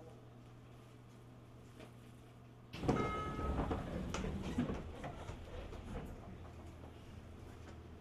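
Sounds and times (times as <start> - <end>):
train sliding door opening: 2.8 - 6.4
steady low rush of station noise: 2.8 - 6.6.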